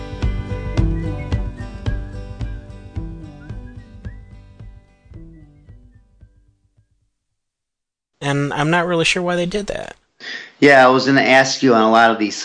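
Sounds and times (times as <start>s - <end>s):
whistled melody: 0.1s - 6.9s
speech: 8.2s - 12.4s.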